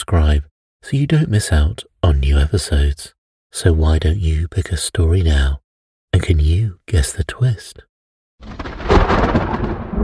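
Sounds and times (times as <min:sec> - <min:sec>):
speech: 0:00.1 - 0:09.4
rumble of thunder from a storm: 0:08.4 - 0:10.0.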